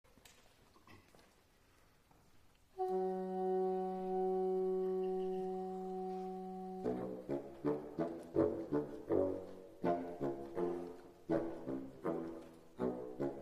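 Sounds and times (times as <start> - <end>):
bassoon: 2.8 - 13.3.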